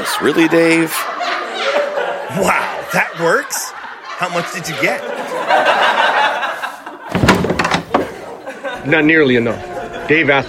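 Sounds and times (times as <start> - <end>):
laughter: 0.0 - 10.4
steady wash of noise: 0.0 - 10.4
speech: 0.2 - 1.3, 2.3 - 6.2, 8.8 - 10.4
knocking, clattering thumps of someone coming in: 7.1 - 8.2
door opening: 7.1 - 8.3.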